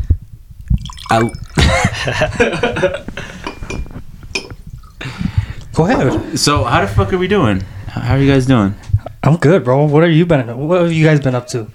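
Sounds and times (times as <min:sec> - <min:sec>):
drink gurgling as it is poured into a glass: 0:00.6 - 0:02.0, 0:04.4 - 0:05.2
light clinks of glass: 0:00.7 - 0:02.0, 0:03.4 - 0:05.0
speech: 0:01.1 - 0:03.3, 0:05.8 - 0:11.7
laughter: 0:01.6 - 0:03.4.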